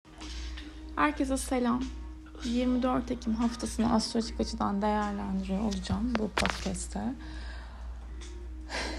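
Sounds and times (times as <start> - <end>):
speech: 1.0 - 7.4
deep inhaled breath: 7.2 - 8.9.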